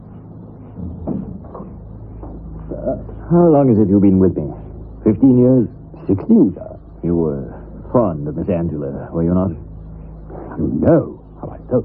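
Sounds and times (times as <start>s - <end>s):
steady low hum of room noise: 0.0s - 11.8s
faint knocks of a door settling: 0.6s - 3.3s
door swinging shut with a soft thud: 0.7s - 2.4s
speech: 2.8s - 4.4s, 5.1s - 9.6s, 10.6s - 11.8s.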